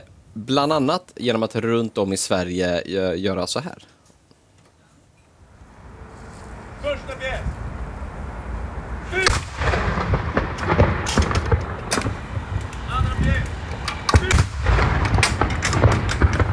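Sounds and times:
speech: 0:00.4 - 0:04.0
steady outdoor rumble: 0:05.4 - 0:16.5
crowd murmuring: 0:05.7 - 0:15.9
ceremonial salute cannon blasts: 0:06.8 - 0:16.5.

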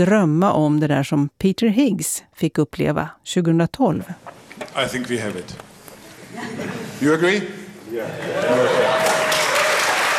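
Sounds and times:
speech: 0:00.0 - 0:05.7, 0:06.4 - 0:09.1
laughter: 0:06.0 - 0:09.4
audience applause at a large scientific meeting: 0:07.9 - 0:10.1.

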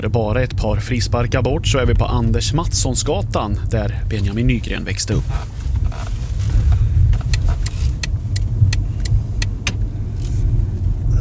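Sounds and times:
speech: 0:00.0 - 0:06.1
car engine rumble driving along a residential street: 0:00.0 - 0:11.1
sharp clicks: 0:07.2 - 0:09.8.

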